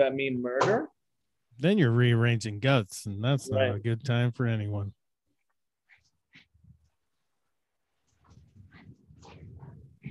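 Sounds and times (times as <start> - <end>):
speech: 0.0 - 1.0, 1.6 - 5.0
dogs snuffling and panting: 8.1 - 10.1.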